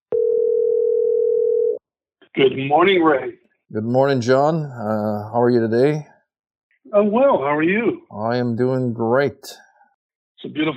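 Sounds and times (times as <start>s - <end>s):
steady telephone tone on the line: 0.1s - 1.8s
speech: 2.4s - 6.1s, 6.8s - 9.6s, 10.4s - 10.7s.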